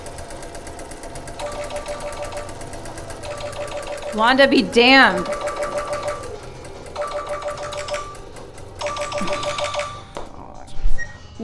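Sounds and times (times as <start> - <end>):
telephone ringing: 1.1 - 10.2
speech: 4.1 - 5.4.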